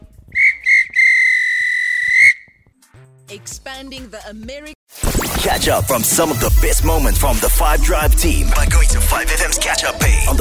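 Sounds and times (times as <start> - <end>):
referee's whistle blown to end match: 0.4 - 2.5
speech: 3.3 - 4.8, 5.4 - 10.3.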